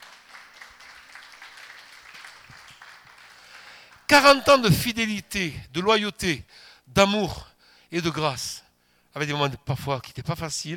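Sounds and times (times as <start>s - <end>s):
audience applause: 0.0s - 4.2s
speech: 4.1s - 8.6s, 9.2s - 10.7s.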